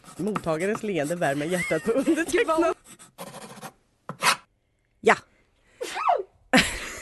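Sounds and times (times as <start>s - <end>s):
speech: 0.3s - 2.8s
laughter: 1.3s - 2.7s, 6.6s - 6.9s
sneeze: 5.8s - 6.3s.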